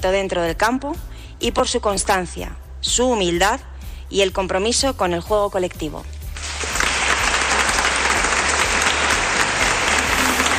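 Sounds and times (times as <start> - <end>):
speech: 0.0 - 6.2
indoor audience applause at an awards gala: 6.4 - 10.5.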